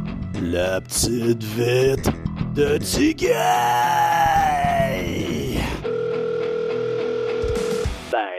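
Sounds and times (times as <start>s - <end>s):
speech: 0.4s - 5.1s
telephone dial tone: 5.8s - 7.9s.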